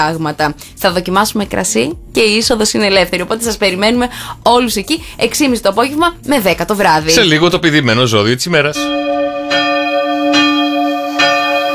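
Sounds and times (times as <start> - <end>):
speech: 0.0 - 9.6
bell ringing: 8.8 - 11.7.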